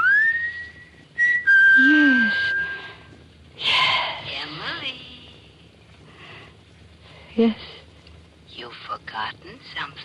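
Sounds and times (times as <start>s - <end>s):
man whistling a short signal: 0.0s - 3.0s
speech: 7.4s - 7.8s.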